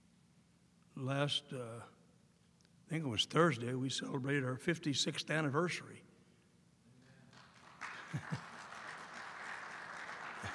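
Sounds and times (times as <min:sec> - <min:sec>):
speech: 0:01.0 - 0:02.0, 0:02.9 - 0:06.1
audience applause for the speaker's wife: 0:07.3 - 0:10.5
laughter: 0:07.9 - 0:08.8, 0:10.2 - 0:10.5.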